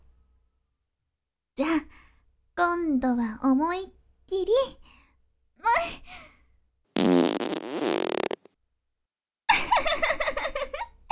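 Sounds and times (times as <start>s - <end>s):
speech: 1.6s - 2.0s, 2.6s - 5.0s, 5.6s - 6.3s
long loud buzzing fart sputtering: 7.0s - 8.5s
giggling: 9.5s - 11.0s.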